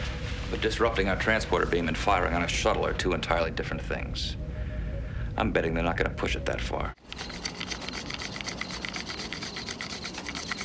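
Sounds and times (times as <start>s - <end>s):
speech: 0.5s - 4.4s, 5.4s - 7.0s
stick rubbed between hands to start a fire by friction over dry grass: 7.0s - 10.6s.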